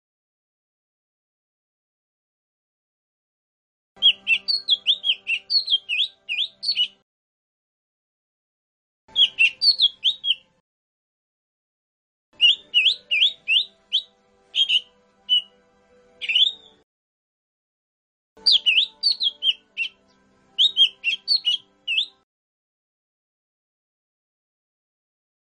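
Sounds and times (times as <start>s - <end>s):
Lesser green leafbird song of slurred whistled notes: 4.0s - 7.0s, 9.1s - 10.6s, 12.4s - 16.8s, 18.4s - 22.2s.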